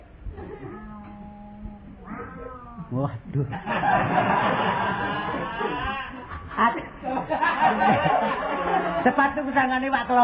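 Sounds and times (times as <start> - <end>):
cat meowing: 0.4 - 3.0
speech: 2.9 - 10.2
laughter: 3.5 - 9.2.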